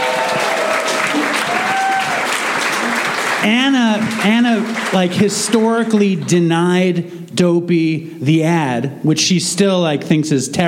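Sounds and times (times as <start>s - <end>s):
faint whoops from the crowd: 0.0s - 5.1s
live audience applauding: 0.0s - 6.3s
speech: 3.4s - 10.6s.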